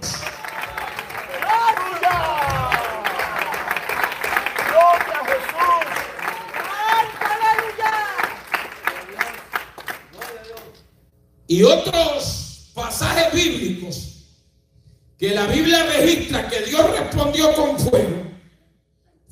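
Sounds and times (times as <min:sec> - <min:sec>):
audience applauding during a church service: 0:00.0 - 0:10.8
speech: 0:11.5 - 0:12.3, 0:13.3 - 0:14.1, 0:15.2 - 0:18.2.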